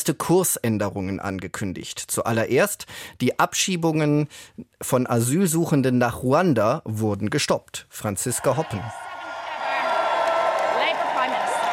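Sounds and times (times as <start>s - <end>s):
speech: 0.0s - 9.1s
large crowd of friends and party colleagues cheering outside 10 Downing Street, London: 8.3s - 11.7s
whoops and shouts from a cheering crowd: 8.3s - 11.7s.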